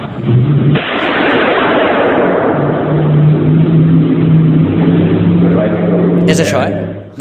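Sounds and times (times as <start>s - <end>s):
steady low hum: 0.0s - 7.1s
single loud gunshot reverberating in a museum during an art performance: 0.7s - 6.2s.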